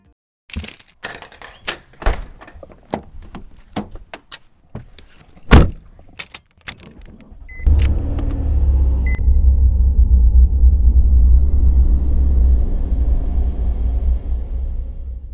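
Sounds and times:
clicks and knocks: 0:00.5 - 0:07.3
keys rattling as they are grabbed: 0:00.5 - 0:07.9
house door opening: 0:00.5 - 0:08.6
car engine starting up and idling: 0:00.5 - 0:15.3.

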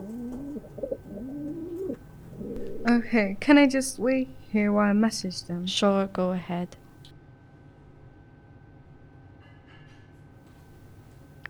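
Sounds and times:
pigeons cooing at a newly opened venue: 0:00.0 - 0:05.2
steady hum: 0:00.0 - 0:07.1
speech: 0:02.8 - 0:06.8.

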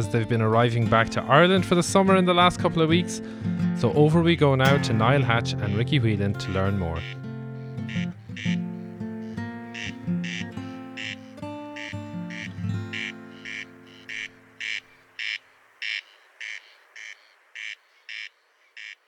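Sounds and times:
speech: 0:00.0 - 0:07.2
soft tonal music: 0:00.0 - 0:14.6
corncrake rasping crex-crex call: 0:04.7 - 0:19.0.

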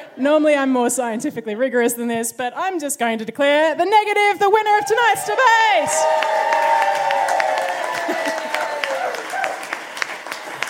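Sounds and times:
speech: 0:00.2 - 0:07.3
cheers and whoops: 0:04.8 - 0:09.9
crowd applause with dense clapping: 0:05.8 - 0:10.6.

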